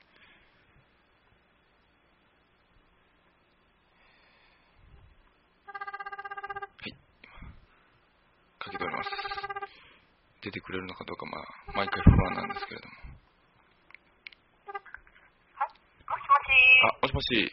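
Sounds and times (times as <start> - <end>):
low hiss: 0.0 - 17.5
buzzing warbling telephone ringback tone: 5.7 - 6.7, 8.7 - 9.8, 11.7 - 12.7
speech: 8.8 - 9.4, 10.4 - 13.1, 17.0 - 17.5.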